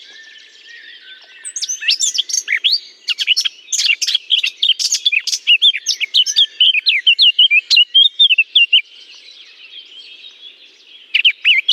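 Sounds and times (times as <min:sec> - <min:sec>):
Eurasian blackcap singing from a holly bush: 0:00.0 - 0:11.7.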